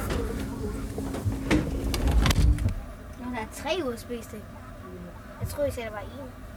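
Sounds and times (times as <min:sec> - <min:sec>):
train compartment sliding door rumbling along its track and shutting: 0:00.0 - 0:02.9
voices murmuring at a train station in Denmark: 0:00.0 - 0:06.5
speech: 0:03.5 - 0:04.6, 0:05.4 - 0:06.4.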